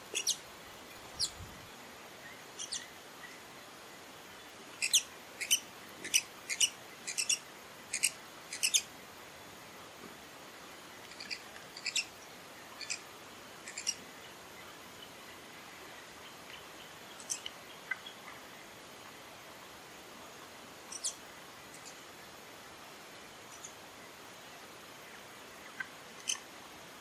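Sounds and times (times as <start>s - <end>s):
horned sungem chipping calls: 0.0s - 0.4s, 1.0s - 1.4s, 2.6s - 2.9s, 4.8s - 8.9s, 11.1s - 12.2s, 12.8s - 14.0s, 20.9s - 22.0s
soft hiss: 0.0s - 26.9s.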